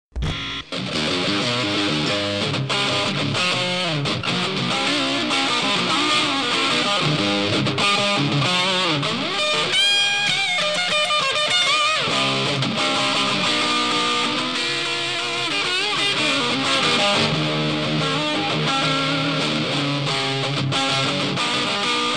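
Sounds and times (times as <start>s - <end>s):
rock riff ringtone: 0.1s - 22.1s.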